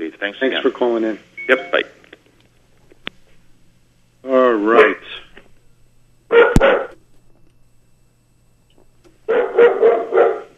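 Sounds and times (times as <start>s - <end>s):
speech: 0.2s - 2.0s, 4.6s - 5.0s
dog barking at home: 6.3s - 7.0s, 9.3s - 10.5s.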